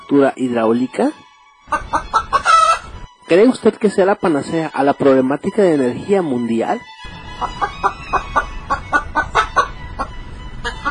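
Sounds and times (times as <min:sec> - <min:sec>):
speech: 0:00.1 - 0:02.2, 0:03.3 - 0:08.2
chicken clucking: 0:01.7 - 0:03.0, 0:07.1 - 0:10.8.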